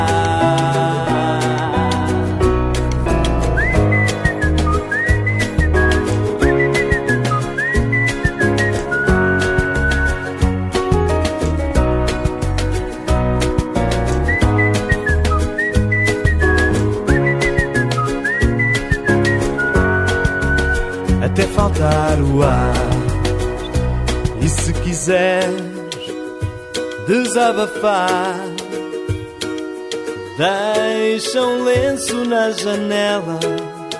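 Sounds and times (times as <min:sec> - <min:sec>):
steady rhythmic musical backing: 0:00.0 - 0:33.9
person whistling a bright lilting tune: 0:03.2 - 0:10.4, 0:14.1 - 0:21.1
speech: 0:27.4 - 0:28.5, 0:30.4 - 0:30.6, 0:31.2 - 0:33.7.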